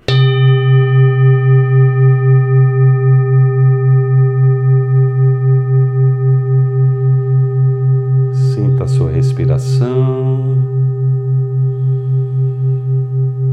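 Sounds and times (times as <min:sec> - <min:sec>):
meditation bell ringing: 0:00.0 - 0:13.5
person speaking: 0:08.4 - 0:10.8.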